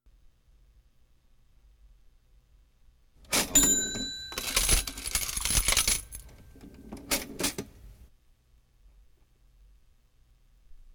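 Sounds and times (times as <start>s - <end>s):
modern cash register: 3.3s - 7.7s.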